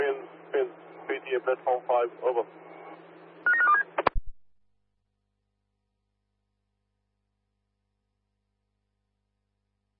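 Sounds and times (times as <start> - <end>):
low steady hum: 0.0 - 4.4
speech: 1.4 - 2.8
telephone keypad tones: 3.5 - 4.2.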